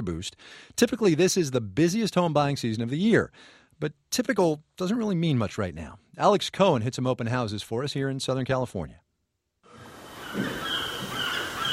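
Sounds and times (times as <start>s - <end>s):
speech: 0.0s - 9.0s
Pacific Ocean surf washing in Southern California: 9.7s - 11.7s
seagulls calling by a townhouse in Santa Monica: 9.7s - 11.7s.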